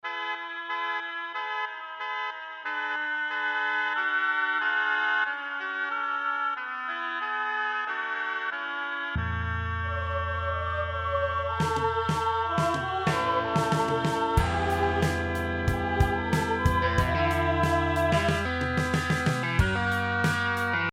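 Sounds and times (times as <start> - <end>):
Arturia mellotron oboe: 0.0 - 20.9.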